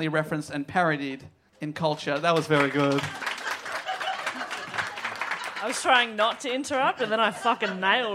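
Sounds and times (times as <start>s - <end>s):
speech: 0.0s - 3.3s, 5.6s - 8.1s
small audience applauding politely: 2.1s - 6.9s
laughter: 2.6s - 8.1s.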